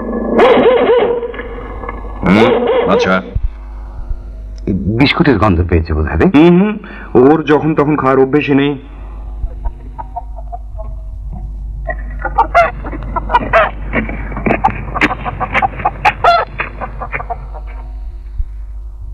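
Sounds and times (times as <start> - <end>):
low steady hum: 0.0 - 19.1
speech: 2.3 - 3.4, 4.8 - 9.0
chicken clucking and squawking while being carried: 9.6 - 11.1, 11.9 - 18.0.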